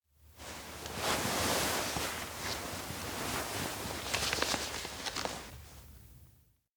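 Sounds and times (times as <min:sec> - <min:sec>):
paper rustling under a pillow: 0:00.8 - 0:05.8.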